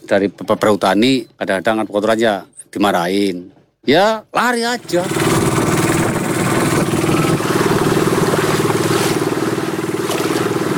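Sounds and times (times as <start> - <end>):
speech: 0.1 - 5.2
fishing boat engine running: 4.7 - 10.7
faint water: 4.8 - 10.7.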